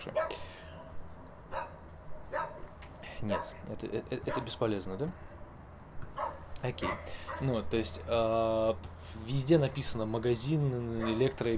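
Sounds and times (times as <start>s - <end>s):
dogs barking: 0.0s - 3.6s, 4.2s - 4.6s, 6.1s - 7.6s, 11.0s - 11.4s
speech: 3.2s - 5.4s, 6.6s - 11.5s.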